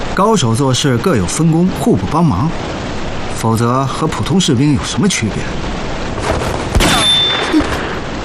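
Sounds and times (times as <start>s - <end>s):
speech: 0.2s - 2.8s, 3.4s - 5.8s
gunfire in a small, cramped space: 6.2s - 8.1s.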